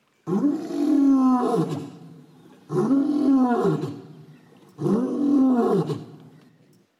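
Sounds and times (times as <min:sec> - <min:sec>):
lion roaring: 0:00.3 - 0:02.0, 0:02.7 - 0:04.1, 0:04.8 - 0:06.2.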